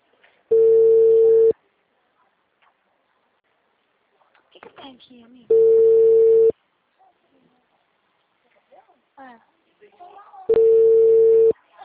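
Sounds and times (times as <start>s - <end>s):
telephone ringback tone: 0.5s - 1.5s, 5.5s - 6.5s, 10.5s - 11.6s
speech: 4.9s - 6.2s, 8.7s - 10.2s.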